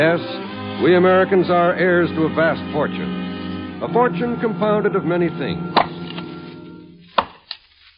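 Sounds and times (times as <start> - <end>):
speech: 0.0 - 3.2, 3.8 - 5.7
chopping strikes into wood: 5.8 - 6.3, 7.1 - 7.6.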